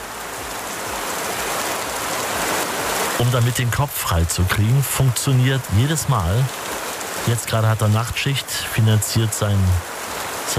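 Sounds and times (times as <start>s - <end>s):
rain sounds played back on a mobile phone: 0.0s - 10.5s
speech: 3.2s - 6.7s, 7.3s - 9.9s.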